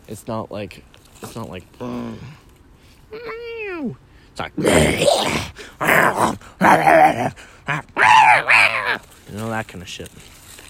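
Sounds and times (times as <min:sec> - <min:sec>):
speech: 0:00.1 - 0:02.4, 0:03.1 - 0:10.4
person's voice imitating a snarling dog: 0:04.6 - 0:09.0.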